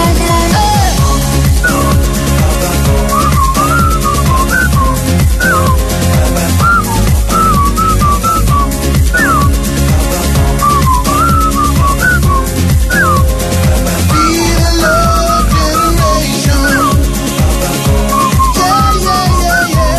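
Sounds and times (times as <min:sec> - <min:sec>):
dance-pop beat with thumping bass: 0:00.0 - 0:19.9
whistled melody in a pop song: 0:00.9 - 0:02.2, 0:02.9 - 0:09.6, 0:10.6 - 0:13.4, 0:14.1 - 0:17.1, 0:18.1 - 0:19.9.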